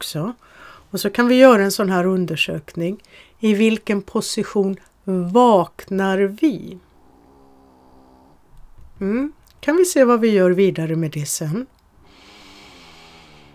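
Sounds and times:
speech: 0:00.0 - 0:06.9, 0:09.0 - 0:11.8
small pet snoring: 0:06.8 - 0:08.5, 0:12.0 - 0:13.5.

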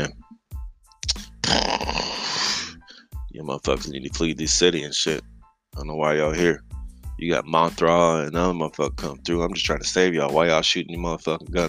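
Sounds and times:
person vocally imitating a giant monster breathing fire: 0:01.1 - 0:02.9
speech: 0:03.4 - 0:11.6.

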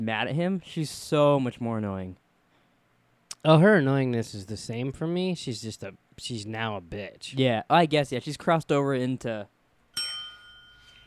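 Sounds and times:
speech: 0:00.0 - 0:02.2, 0:03.4 - 0:09.5
single bright bell ding: 0:10.0 - 0:11.0.

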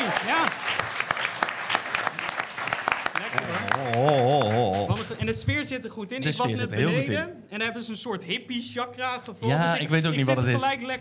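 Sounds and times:
live audience applause: 0:00.0 - 0:05.3
speech: 0:05.3 - 0:10.9.

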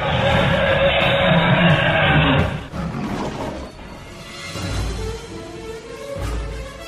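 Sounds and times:
lion roaring: 0:00.0 - 0:03.7.

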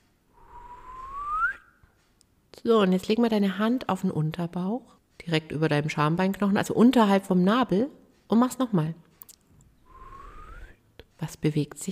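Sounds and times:
seated person whistling a rising note: 0:00.4 - 0:01.8, 0:09.9 - 0:10.8
speech: 0:02.6 - 0:09.1, 0:11.2 - 0:11.9.

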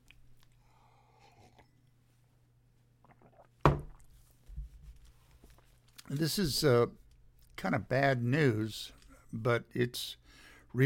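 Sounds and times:
quiet sip of orange juice: 0:00.0 - 0:02.0, 0:03.0 - 0:04.2
speech: 0:06.1 - 0:07.0, 0:07.6 - 0:10.8.

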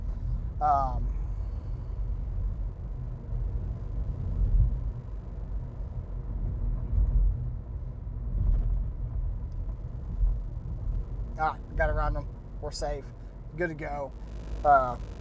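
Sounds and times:
heavy construction machinery engine drone heard from inside a moving car: 0:00.0 - 0:15.2
speech: 0:00.6 - 0:01.2, 0:11.4 - 0:15.2.

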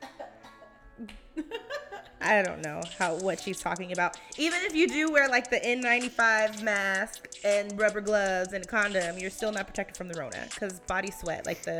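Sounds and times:
person coughing: 0:00.0 - 0:00.7
speech: 0:01.0 - 0:01.6, 0:02.2 - 0:11.7
laughter: 0:01.4 - 0:02.2.

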